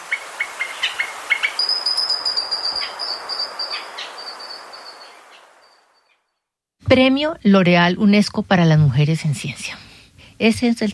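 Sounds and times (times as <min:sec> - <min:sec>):
hiss: 0:00.0 - 0:10.9
mountain grackle singing chirps and whistles: 0:00.9 - 0:05.8
speech: 0:06.9 - 0:09.8, 0:10.4 - 0:10.9.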